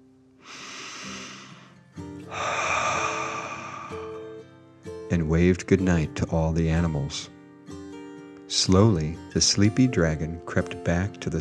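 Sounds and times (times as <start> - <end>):
slow deep breath in and out: 0.4 - 4.5
speech: 5.2 - 7.3, 8.5 - 11.4.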